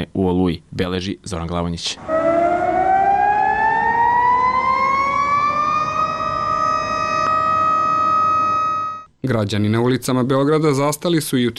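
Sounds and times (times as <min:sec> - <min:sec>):
speech: 0:00.2 - 0:02.2, 0:09.2 - 0:11.5
civil defence sirens sounding across Belgrade for a memorial minute of silence: 0:02.0 - 0:09.1.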